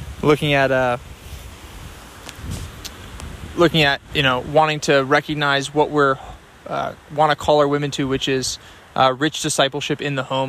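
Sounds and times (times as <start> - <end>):
steady wind rushing across the microphone outdoors: 0.0 - 4.8
speech: 0.2 - 1.1, 3.6 - 10.4.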